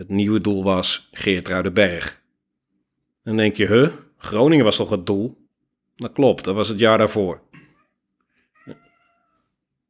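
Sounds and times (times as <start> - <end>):
speech: 0.0 - 2.2, 3.2 - 5.4, 6.0 - 7.5
cat meowing in a complaining yowl: 7.8 - 9.5.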